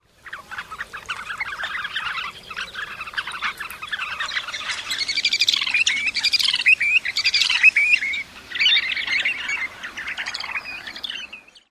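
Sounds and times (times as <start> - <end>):
calls of flock: 0.2 - 11.5.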